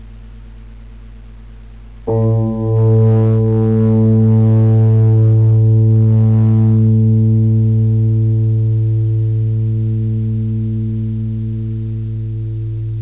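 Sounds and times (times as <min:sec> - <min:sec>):
magnetic monochord: 0:02.1 - 0:13.0.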